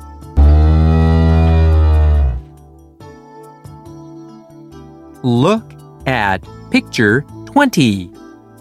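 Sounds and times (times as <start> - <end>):
big milk cow mooing: 0.4 - 2.5
speech: 5.2 - 8.2.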